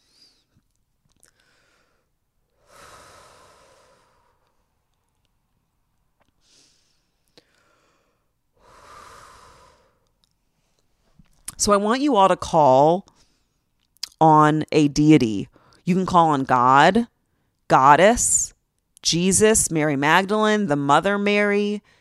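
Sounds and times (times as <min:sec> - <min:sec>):
slow deep breathing during a guided eyes-closed meditation exercise: 0:01.2 - 0:04.7, 0:06.4 - 0:10.9
speech: 0:11.6 - 0:13.1, 0:14.2 - 0:17.1, 0:17.7 - 0:21.9.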